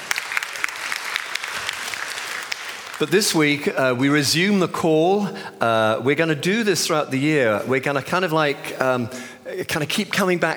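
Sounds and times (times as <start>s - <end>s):
audience applause for a colleague: 0.0s - 3.6s
speech: 3.0s - 10.5s.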